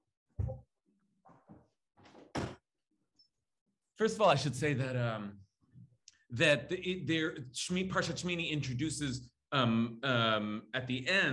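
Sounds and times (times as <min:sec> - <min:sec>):
door pushed shut with a heavy thunk: 0:02.0 - 0:02.6
speech: 0:04.0 - 0:05.4, 0:06.3 - 0:11.3.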